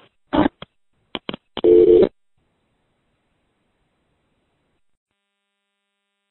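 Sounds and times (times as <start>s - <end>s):
steady buzzing payphone line tone after call runs out: 1.6s - 2.1s.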